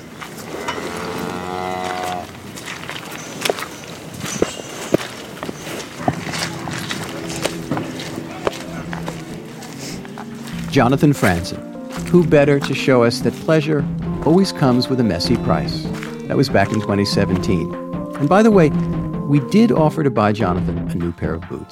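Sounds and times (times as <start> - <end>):
hoof-like clopping in a busy farmyard: 0.0 - 19.2
cow mooing on a farm: 0.5 - 2.4, 6.0 - 10.3
speech: 10.8 - 21.6.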